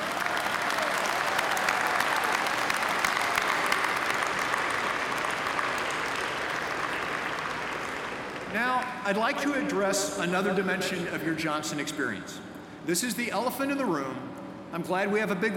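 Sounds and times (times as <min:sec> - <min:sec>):
ceremony audience applause: 0:00.0 - 0:09.1
speech: 0:08.6 - 0:15.5.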